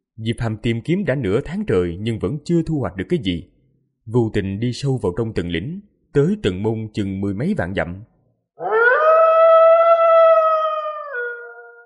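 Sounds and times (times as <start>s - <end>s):
speech: 0.2s - 8.7s
long howling cry sounding across mountains: 8.6s - 11.8s.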